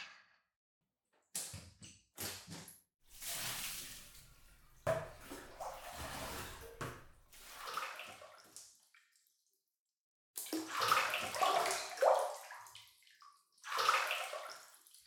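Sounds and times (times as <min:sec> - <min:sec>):
bathwater with hot spring bath salts splashing and sloshing in a tub: 0:03.0 - 0:09.4, 0:10.4 - 0:15.0.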